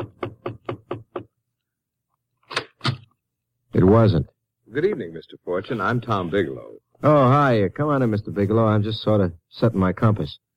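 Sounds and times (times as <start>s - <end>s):
knocking on a door: 0.0s - 1.4s
speech: 3.8s - 10.4s.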